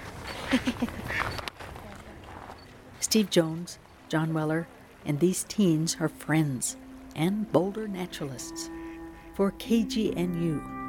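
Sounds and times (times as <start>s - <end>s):
outdoor noise at a park pond in an urban area: 0.0s - 10.8s
speech: 0.5s - 1.4s, 3.1s - 8.8s, 9.4s - 10.8s
ducks quacking at a park pond: 8.2s - 9.4s.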